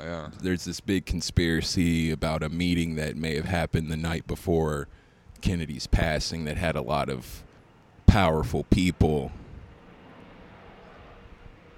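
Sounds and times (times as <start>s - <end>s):
airplane passing overhead: 0.0s - 11.7s
speech: 0.2s - 7.5s, 8.1s - 9.4s.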